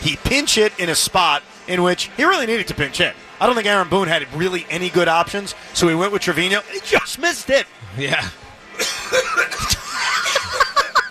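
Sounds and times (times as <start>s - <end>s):
speech: 0.1s - 9.8s
bursts of breathy laughter: 8.8s - 11.1s
harsh forceful cough: 8.8s - 11.1s.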